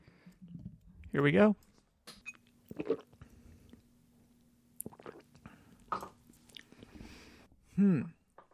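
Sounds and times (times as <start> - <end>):
speech: 1.1 - 1.7, 7.8 - 8.2
sips and swallows of almond coconut milk creamer from a mug: 2.7 - 3.9, 4.8 - 7.0.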